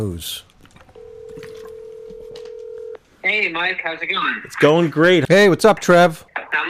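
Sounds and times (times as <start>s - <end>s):
speech: 0.0s - 0.5s, 3.3s - 6.6s
steady telephone dialing tone: 1.0s - 3.0s.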